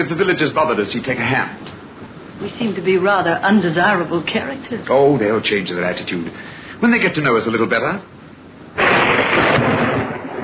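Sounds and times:
speech: 0.0s - 1.7s, 2.4s - 8.2s
heavy thunderclap in a storm with lightning: 8.8s - 10.4s.

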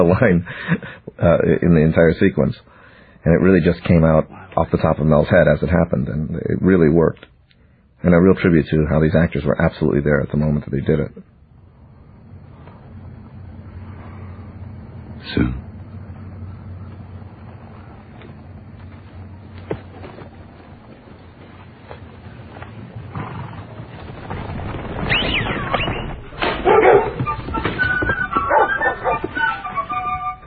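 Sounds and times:
speech: 0.0s - 7.3s, 8.0s - 11.3s, 15.3s - 15.6s
low rumbling background: 0.0s - 27.4s
several dogs barking and yipping while running: 25.1s - 30.4s.

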